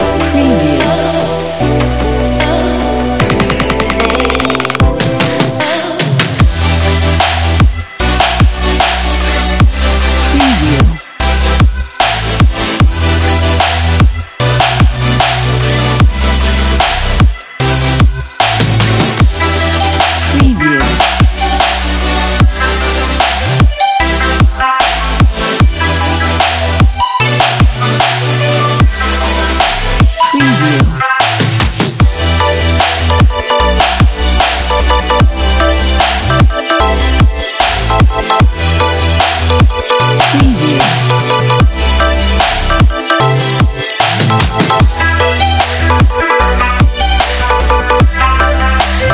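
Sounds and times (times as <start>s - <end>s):
future bass action sport music: 0.0s - 49.1s.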